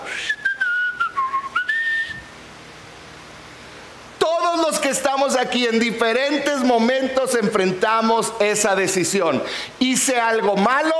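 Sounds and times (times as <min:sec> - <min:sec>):
person whistling a tune: 0:00.0 - 0:02.3
speech: 0:05.3 - 0:10.9.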